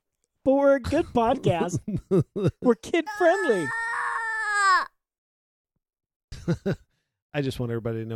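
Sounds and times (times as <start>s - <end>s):
speech: 0.4s - 3.8s, 6.5s - 8.1s
laughter: 1.2s - 3.7s, 6.4s - 6.8s
baby woken by loud music crying: 3.0s - 5.0s.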